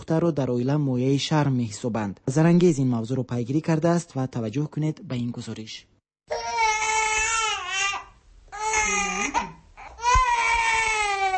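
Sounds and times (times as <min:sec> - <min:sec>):
speech: 0:00.1 - 0:05.9
newborn baby girl wailing: 0:06.3 - 0:11.3.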